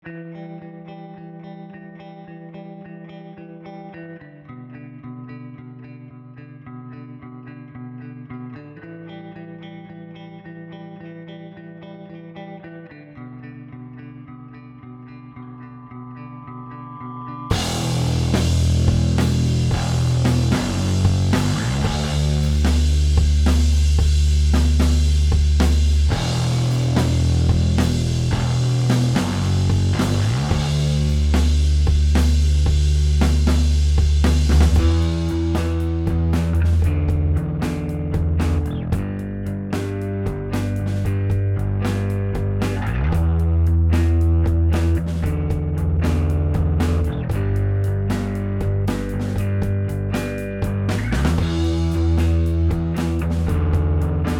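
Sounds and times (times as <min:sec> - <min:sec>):
bass: 0:08.5 - 0:54.3
drums: 0:17.5 - 0:54.3.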